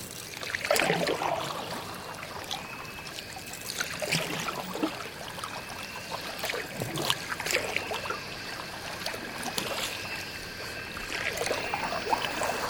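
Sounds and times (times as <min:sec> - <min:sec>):
paddles dipping and splashing as dugout canoes are paddled down a river: 0:00.0 - 0:02.8, 0:03.6 - 0:12.6
faint steady chirr of insects: 0:00.0 - 0:12.6.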